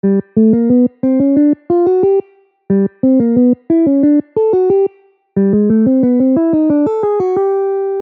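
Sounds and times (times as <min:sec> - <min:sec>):
major 251 chord progression: 0:00.0 - 0:08.0.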